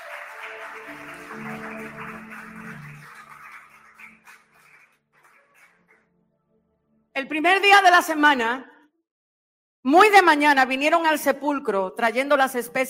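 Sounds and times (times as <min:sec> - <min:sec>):
audience applauding: 0:00.0 - 0:06.1
speech: 0:00.4 - 0:03.1, 0:07.2 - 0:08.7, 0:09.8 - 0:12.8.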